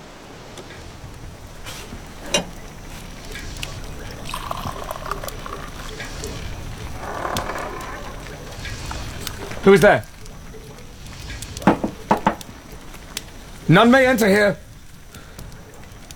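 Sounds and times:
oars knocking and splashing while rowing a boat across the ocean: 0.0s - 16.1s
waves sloshing and lapping on open water: 0.0s - 16.1s
speech: 9.6s - 10.1s, 13.7s - 14.6s.

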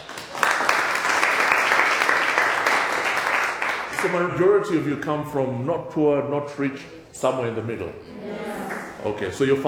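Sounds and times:
crowd clapping: 0.0s - 4.4s, 8.4s - 9.0s
speech: 4.0s - 8.4s, 9.0s - 9.6s.

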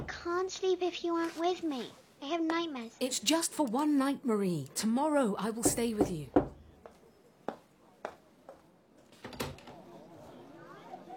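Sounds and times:
speech: 0.2s - 6.4s
knocks or clicks on a door: 5.6s - 6.7s.

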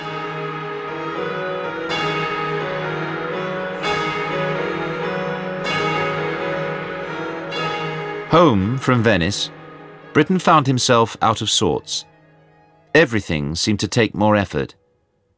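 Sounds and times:
orchestral bells clanging in an opera overture imitating church bells: 0.0s - 12.0s
sustained shimmering orchestral harmonies in an opera overture: 0.0s - 13.6s
speech: 8.3s - 12.1s, 13.0s - 14.8s.

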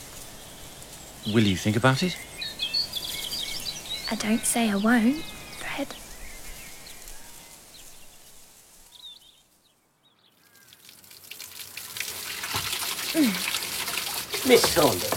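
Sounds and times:
faint birdsong: 0.0s - 11.1s
speech: 1.2s - 2.3s, 4.1s - 6.0s, 14.5s - 15.1s
water sloshing and splashing in a tub from clothes washed by hand: 10.7s - 15.1s.

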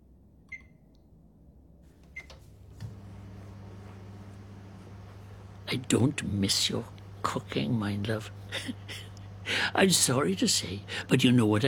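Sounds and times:
microwave keypad press beeps: 0.5s - 0.8s, 2.2s - 2.4s
microwave running with steady low humming drone: 1.9s - 11.6s
speech: 5.7s - 11.6s.

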